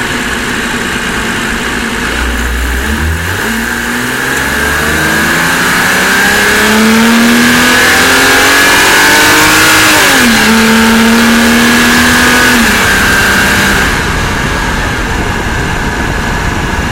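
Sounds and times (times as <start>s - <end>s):
BMW 325i convertible accelerating outside: 0.2s - 16.7s.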